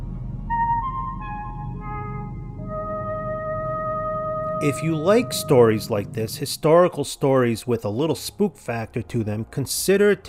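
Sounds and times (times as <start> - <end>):
low steady rumble: 0.0 - 8.0
five-note melody of pure sustained electronic-sounding tones: 0.5 - 6.5
speech: 4.6 - 10.2.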